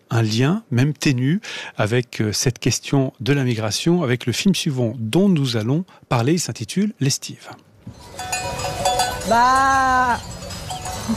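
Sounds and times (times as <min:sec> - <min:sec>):
speech: 0:00.2 - 0:08.6, 0:09.3 - 0:10.4
person imitating a ewe bleating to call her lamb: 0:09.3 - 0:10.2.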